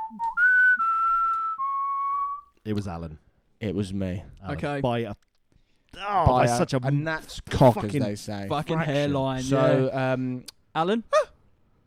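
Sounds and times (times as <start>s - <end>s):
person whistling: 0.0s - 2.5s
speech: 2.6s - 5.3s, 6.0s - 11.3s.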